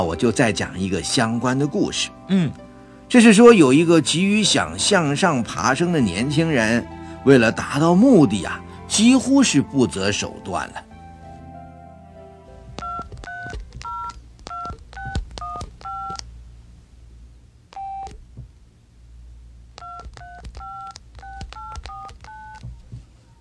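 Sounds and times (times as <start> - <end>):
speech: 0.0 - 10.9
telephone keypad dialing tones: 12.8 - 16.2, 19.8 - 22.6.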